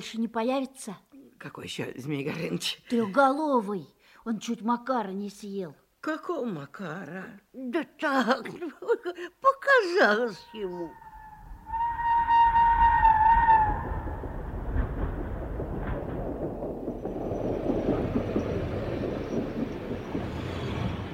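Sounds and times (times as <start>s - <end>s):
speech: 0.0s - 11.0s
multi-toned whistle of a train arriving at a station: 10.6s - 14.2s
train cars rumbling and clattering along the rails: 11.8s - 21.1s.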